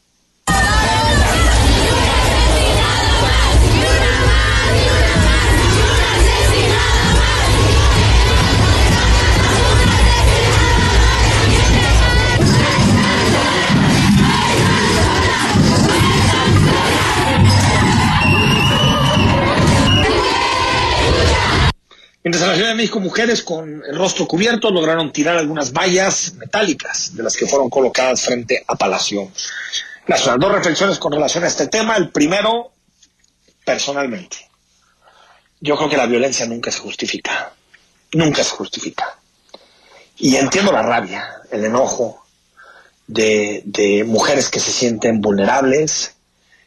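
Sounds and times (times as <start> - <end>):
protest crowd shouting and chanting: 0.5 - 21.8
speech: 23.1 - 32.7, 33.6 - 34.5, 35.6 - 39.2, 40.2 - 42.2, 43.1 - 46.2.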